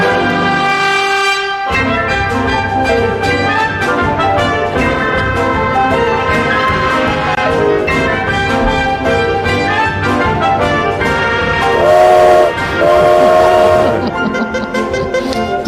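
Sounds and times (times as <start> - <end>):
full orchestral music: 0.0 - 15.6
train whistle blasts: 11.6 - 14.1
laughter: 12.7 - 15.6.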